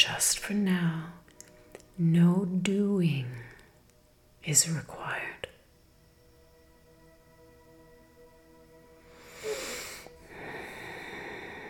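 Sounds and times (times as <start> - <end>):
speech: 0.0 - 1.2, 2.0 - 3.5, 4.4 - 5.4
audible breathing: 9.1 - 11.6.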